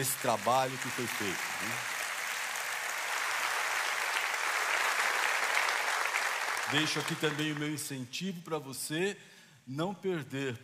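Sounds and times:
speech: 0.0s - 2.0s, 6.7s - 10.6s
audience applause at a conference: 0.0s - 7.8s.

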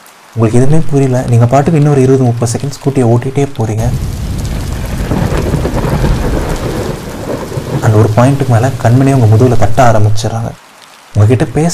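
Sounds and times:
heavy rain pouring down: 0.0s - 11.7s
speech: 0.4s - 4.2s, 8.2s - 11.7s
low rumbling thunder: 3.8s - 10.2s.

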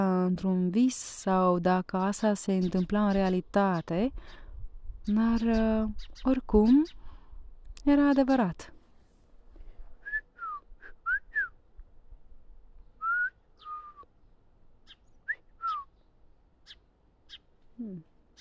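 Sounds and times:
speech: 0.0s - 4.4s, 5.0s - 7.0s, 7.8s - 8.8s, 17.8s - 18.1s
birds whistling and chirping: 13.0s - 14.1s, 14.8s - 17.4s.

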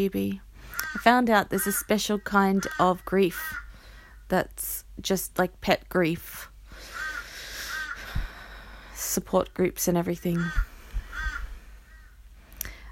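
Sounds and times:
speech: 0.0s - 3.6s, 4.3s - 6.9s, 9.0s - 10.7s
outdoor hiss: 0.0s - 12.8s
crow cawing: 0.7s - 1.0s, 1.6s - 4.2s, 6.8s - 8.1s, 10.4s - 12.2s.

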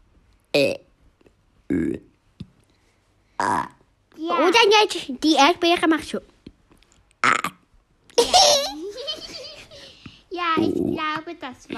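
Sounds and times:
speech: 0.5s - 0.8s, 1.7s - 2.1s, 3.4s - 6.3s, 10.4s - 11.7s
person burping: 1.7s - 2.1s, 3.4s - 3.8s, 7.2s - 7.7s
laughter: 8.2s - 10.0s.

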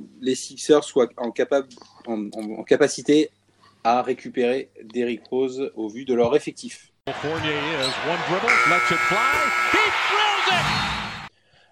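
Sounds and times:
speech: 0.2s - 11.0s
voices and crowd sounds in a gym: 7.1s - 11.3s
basketball arena buzzer blaring: 8.4s - 11.3s.

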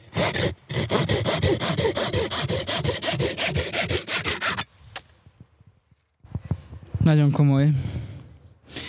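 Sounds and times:
pocketknife folding saw cutting wood: 0.0s - 4.7s
speech: 7.1s - 7.9s.

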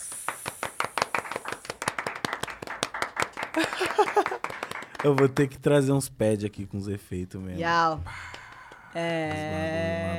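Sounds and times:
small group of hands clapping: 0.0s - 5.6s, 8.2s - 9.7s
laughter: 3.6s - 4.4s, 9.0s - 10.1s
speech: 3.6s - 8.2s, 9.0s - 10.1s.

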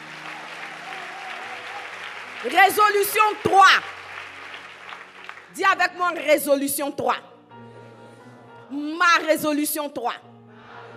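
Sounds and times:
church congregation applauding in praise during a sermon: 0.0s - 6.0s
speech: 2.4s - 4.0s, 5.6s - 7.3s, 8.7s - 10.3s.

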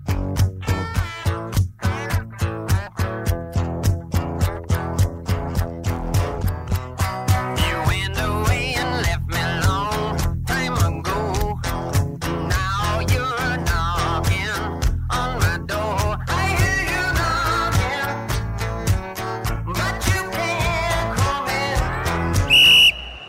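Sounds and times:
rhythmic music: 0.0s - 22.6s
short shrill referee's whistle blast: 7.4s - 7.9s, 22.4s - 23.2s.

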